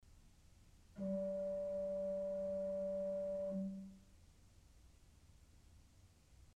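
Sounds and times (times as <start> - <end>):
G note on a four-foot principal organ pipe: 1.0 - 4.0.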